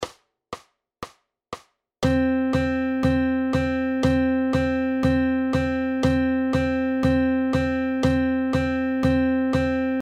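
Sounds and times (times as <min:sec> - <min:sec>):
quarter notes: 0:02.0 - 0:10.0.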